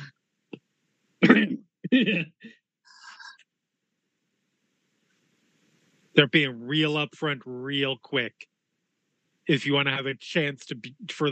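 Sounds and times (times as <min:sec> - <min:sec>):
laughter: 0:01.2 - 0:02.5, 0:06.2 - 0:07.1, 0:09.5 - 0:11.3
person coughing deliberately: 0:01.2 - 0:02.5
speech: 0:01.9 - 0:02.6, 0:06.2 - 0:08.5, 0:09.5 - 0:11.3.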